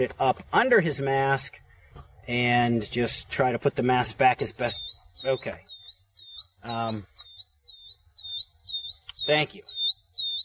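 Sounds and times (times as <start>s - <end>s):
speech: 0.0s - 1.6s, 2.3s - 5.7s, 6.6s - 7.3s, 9.3s - 9.8s
gas monitor low-oxygen alarm warbling shrilly: 4.1s - 10.4s.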